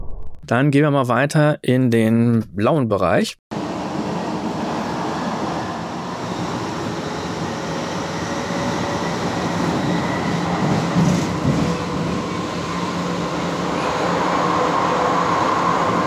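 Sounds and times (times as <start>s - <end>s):
speech: 0.5s - 3.5s
tram rumbling past: 3.6s - 16.0s.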